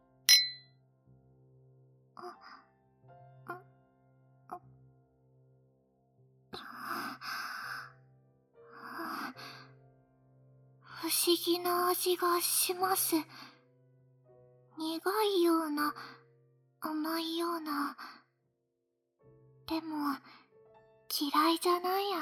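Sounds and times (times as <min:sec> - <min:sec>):
glasses clinking in a toast: 0:00.3 - 0:00.6
speech: 0:11.1 - 0:13.5, 0:14.8 - 0:16.2, 0:16.8 - 0:18.2, 0:19.7 - 0:20.4, 0:21.2 - 0:22.2.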